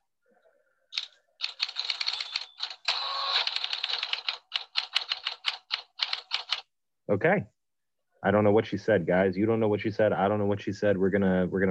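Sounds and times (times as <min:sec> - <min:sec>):
person typing answers on a keyboard: 0:00.9 - 0:06.7
speech: 0:07.1 - 0:07.6, 0:08.2 - 0:11.6.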